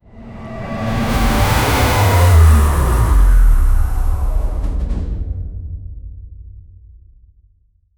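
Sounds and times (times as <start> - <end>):
cinematic downer effect: 0.0 - 6.4.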